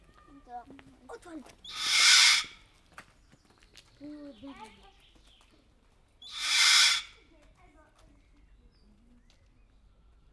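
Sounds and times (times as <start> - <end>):
sulphur-crested cockatoo calling in a zoo: 1.7 - 2.5, 6.3 - 7.1.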